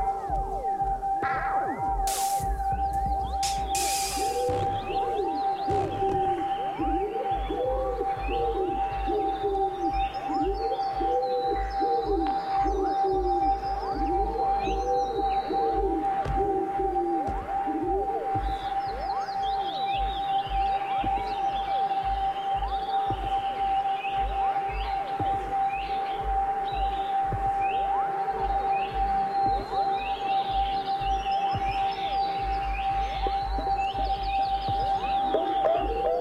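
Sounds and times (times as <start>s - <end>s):
constant tonal hum: 0.0s - 36.2s
wood pigeon cooing: 3.6s - 19.7s, 34.9s - 36.2s.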